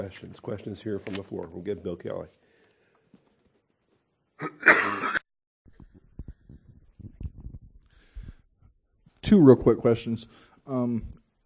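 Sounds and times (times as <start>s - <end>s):
speech: 0.0s - 2.5s, 9.3s - 11.4s
person coughing: 4.4s - 5.2s.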